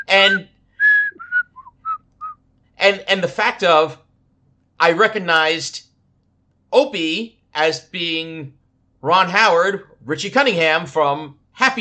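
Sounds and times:
whistled TV theme tune: 0:00.0 - 0:02.4
speech: 0:00.1 - 0:00.5, 0:02.8 - 0:04.0, 0:04.8 - 0:05.9, 0:06.7 - 0:11.7.

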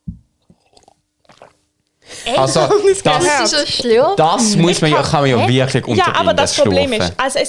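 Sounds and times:
drinking and swallowing: 0:00.0 - 0:07.4
soft mouth clicks: 0:00.4 - 0:01.6
laughter: 0:02.1 - 0:07.4
speech: 0:02.3 - 0:07.4.

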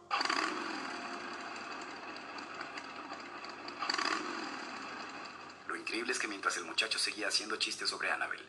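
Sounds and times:
motorcycle engine revving: 0:00.0 - 0:06.7
speech: 0:05.9 - 0:08.4.

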